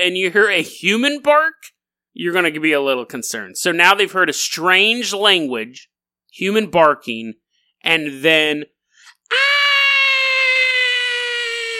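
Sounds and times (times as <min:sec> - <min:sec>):
speech: 0:00.0 - 0:08.7
voice imitating a woman screaming: 0:09.2 - 0:11.7.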